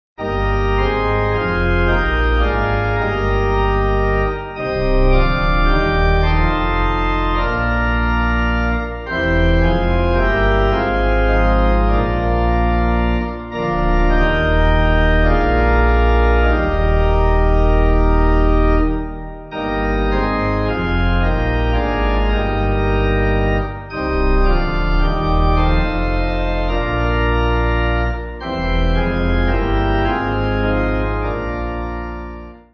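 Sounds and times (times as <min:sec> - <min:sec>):
pipe organ: 0:00.2 - 0:32.7.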